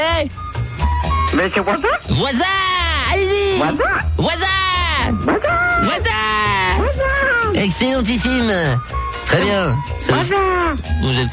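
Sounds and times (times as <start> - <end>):
speech: 0.0 - 0.4, 1.3 - 11.3
person mimicking a horse's whinny: 5.1 - 7.6.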